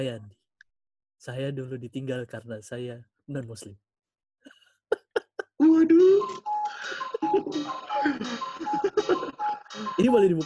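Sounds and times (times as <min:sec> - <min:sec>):
speech: 0:00.0 - 0:00.4, 0:01.2 - 0:03.8, 0:09.8 - 0:10.4
laughter: 0:04.9 - 0:10.4
clock chiming the hour: 0:06.1 - 0:10.4.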